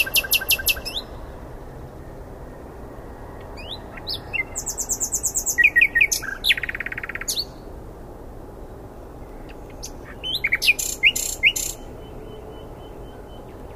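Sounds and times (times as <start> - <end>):
common nightingale Luscinia megarhynchos song: 0.0 - 1.4, 2.4 - 7.7, 8.7 - 13.7.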